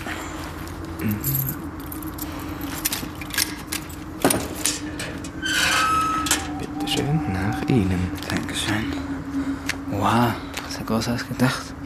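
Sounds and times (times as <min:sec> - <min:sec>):
steady low hum of noise: 0:00.0 - 0:11.8
speech: 0:01.0 - 0:01.8, 0:07.0 - 0:09.0, 0:09.9 - 0:11.8
keys jingling while unlocking a family crypt door: 0:01.0 - 0:06.8.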